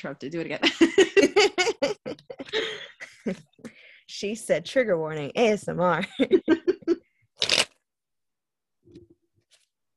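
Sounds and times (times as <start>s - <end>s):
speech: 0.0s - 3.5s, 4.2s - 6.7s
laughter: 0.6s - 3.4s, 6.1s - 7.1s
deck of cards being shuffled: 7.4s - 7.8s.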